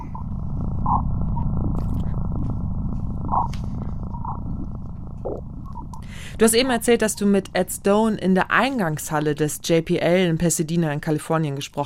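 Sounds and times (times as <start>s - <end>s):
eerie croaking warbling tones of sonified space data: 0.0s - 9.1s
faint crackles and clicks: 0.0s - 9.8s
dense throbbing low rumble of sonified space magnetic field data: 0.0s - 10.4s
speech: 6.4s - 11.8s.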